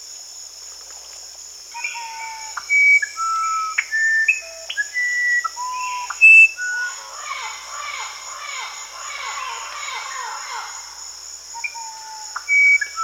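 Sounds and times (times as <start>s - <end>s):
high insect drone: 0.0s - 13.0s
musician wren Cyphorhinus aradus singing in South America: 1.8s - 8.1s, 11.6s - 13.0s.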